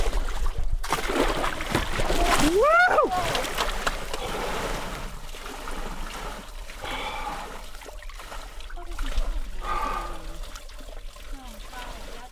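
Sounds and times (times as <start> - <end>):
water splashing as someone lowers into a tub: 0.0 - 12.3
person whooping: 2.4 - 3.4
people gasping: 6.8 - 7.6, 9.6 - 10.5.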